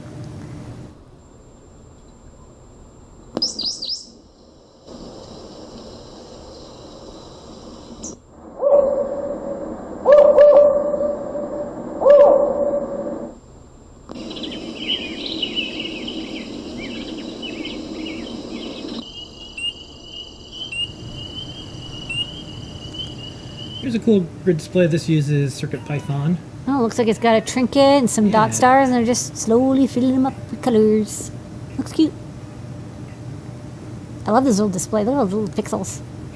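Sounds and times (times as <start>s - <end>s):
steady insect drone: 0.0s - 36.3s
recorded national-park bird calls from a soundboard: 3.4s - 4.2s, 7.9s - 13.3s, 14.2s - 24.0s
speech: 23.9s - 32.2s, 34.3s - 36.2s.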